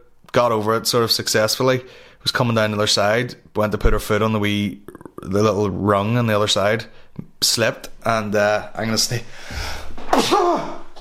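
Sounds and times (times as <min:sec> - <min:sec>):
speech: 0:00.4 - 0:10.8
sneeze: 0:10.1 - 0:10.8.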